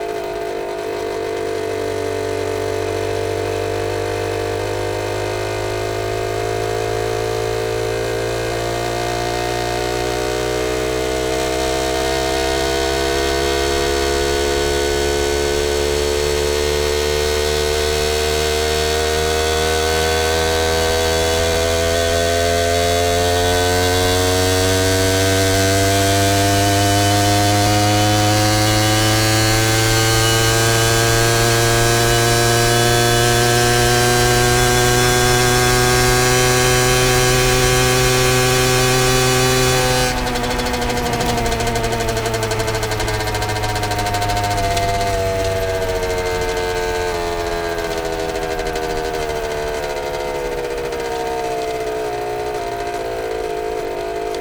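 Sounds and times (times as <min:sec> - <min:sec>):
Keeway TX50 moped engine speeding up, slowing down and shutting down: 0:00.0 - 0:54.3.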